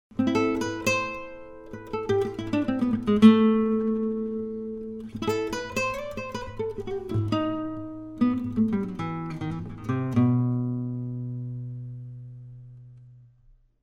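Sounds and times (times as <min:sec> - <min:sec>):
acoustic guitar playing: 0:00.1 - 0:13.6.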